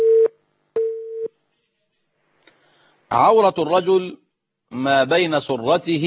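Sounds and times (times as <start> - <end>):
mid-pitched telephone line tone of an incoming call connecting: 0.0 - 1.3
speech: 3.1 - 6.0.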